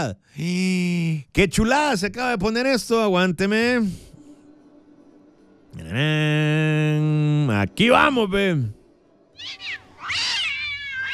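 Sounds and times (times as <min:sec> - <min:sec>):
speech: 0:00.0 - 0:04.1, 0:05.8 - 0:08.8
cats meowing and yowling: 0:09.4 - 0:11.1.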